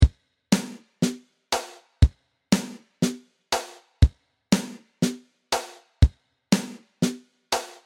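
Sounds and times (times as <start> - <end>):
MIDI drum backbeat: 0.0 - 7.8.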